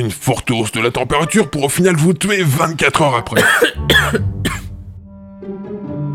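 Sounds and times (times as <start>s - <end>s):
speech: 0.0s - 4.6s
person giving short light coughs: 3.3s - 4.7s.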